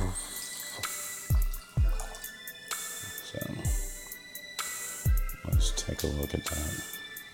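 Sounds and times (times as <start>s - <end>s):
light straw-coloured wine poured into a glass: 0.0s - 2.6s
speech: 5.6s - 7.0s.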